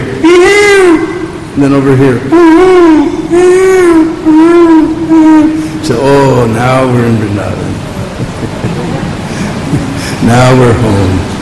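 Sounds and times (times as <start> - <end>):
person imitating peacock calls with nasal wails: 0.0 - 1.4, 2.2 - 6.2
speech: 1.6 - 4.6, 5.2 - 7.6, 10.3 - 11.3
laughter: 7.9 - 10.5.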